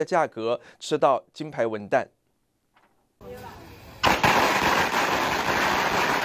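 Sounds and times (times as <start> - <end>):
speech: 0.0 - 2.2
string of firecrackers crackling and popping in Ruisui Hualien Taiwan: 3.2 - 6.2.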